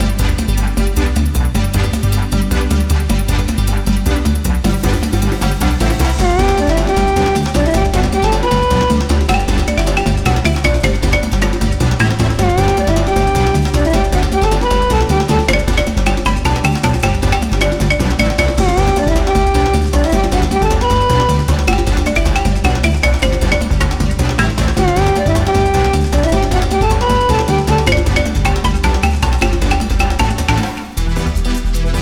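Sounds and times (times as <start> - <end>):
joyful jungle music at 155 bpm: 0.0 - 31.9.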